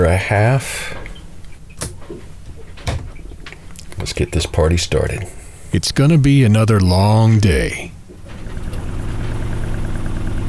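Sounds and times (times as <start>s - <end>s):
speech: 0.0s - 1.0s, 4.1s - 8.0s
sailboat engine running before weighing anchor: 0.0s - 10.4s.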